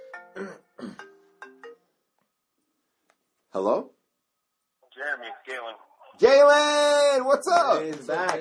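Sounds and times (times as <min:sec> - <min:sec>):
phone playing electronic ringtone melody for incoming call: 0:00.0 - 0:02.1
speech: 0:00.4 - 0:00.6, 0:03.6 - 0:04.0, 0:05.0 - 0:08.3.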